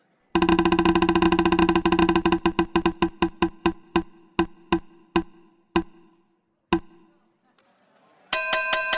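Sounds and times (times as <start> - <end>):
prize wheel spinning with rapid ticking: 0.4 - 6.2, 6.8 - 7.1.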